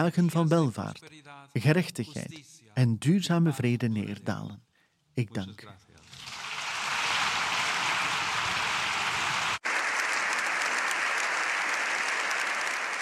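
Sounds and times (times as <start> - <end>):
speech: 0.0 - 6.3
large crowd applauding after a speech by the Pope in Spain: 6.2 - 13.0.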